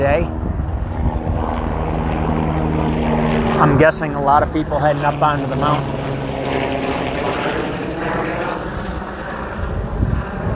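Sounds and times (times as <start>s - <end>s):
speech: 0.0s - 0.4s, 3.6s - 6.7s
helicopter flying over a mountain: 0.0s - 10.5s.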